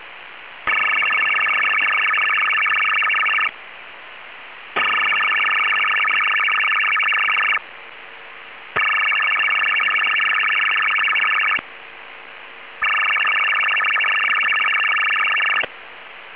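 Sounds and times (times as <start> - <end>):
Chinese military 4-FSK 100 baud 500 Hz data signal: 0.7 - 3.5, 4.8 - 7.6, 8.8 - 11.6, 12.8 - 15.7.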